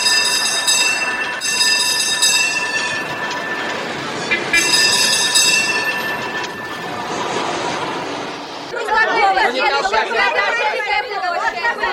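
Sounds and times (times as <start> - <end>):
tram wheels squealing on city rails: 0.0 - 8.7
crowd chatter: 0.0 - 11.9
tram rumbling along city rails: 0.0 - 11.9
people talking: 3.0 - 11.9.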